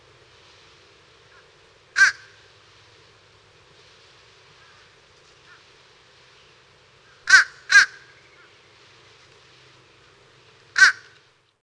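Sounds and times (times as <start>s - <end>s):
Fish Crow giving brief nasal caws: 2.0s - 2.4s, 7.2s - 8.1s, 10.8s - 11.2s.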